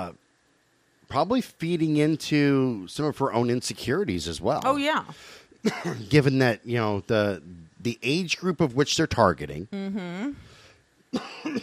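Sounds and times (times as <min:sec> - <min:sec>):
speech: 0:01.1 - 0:10.5, 0:11.1 - 0:11.6
short sharp coughs: 0:05.7 - 0:06.1, 0:11.1 - 0:11.6.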